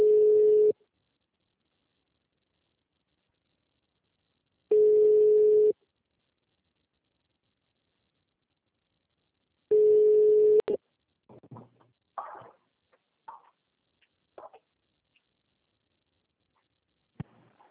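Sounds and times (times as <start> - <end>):
ringing tone of an outgoing telephone call: 0.0 - 0.7, 4.7 - 5.7, 9.7 - 10.8.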